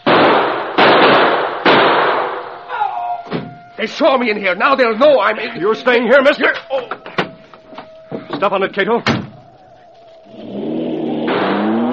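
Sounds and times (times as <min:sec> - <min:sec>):
gunshots: 0:00.0 - 0:02.5, 0:11.2 - 0:11.9
speech: 0:03.8 - 0:07.1, 0:08.4 - 0:09.2.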